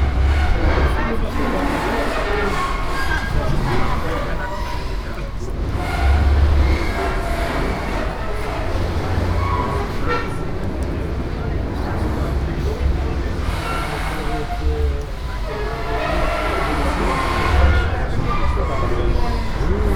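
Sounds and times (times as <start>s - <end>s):
floating landing stage rumbling and thudding in the swell: 0.0s - 19.9s
voices of passengers boarding a ferry: 0.0s - 19.9s.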